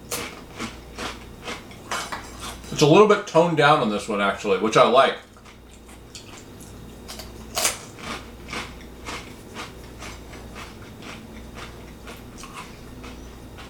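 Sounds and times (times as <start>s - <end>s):
speech: 2.7s - 5.3s
crunching guacamole jalapeno tortilla chips: 7.5s - 13.6s.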